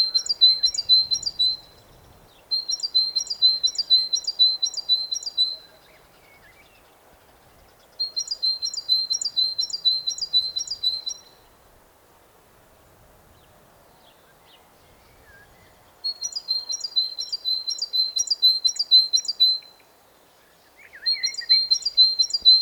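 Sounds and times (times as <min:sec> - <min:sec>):
great tit Parus major singing: 0:00.0 - 0:05.8, 0:08.0 - 0:11.3, 0:16.1 - 0:19.8, 0:20.8 - 0:22.6
faint low background noise: 0:00.0 - 0:22.6.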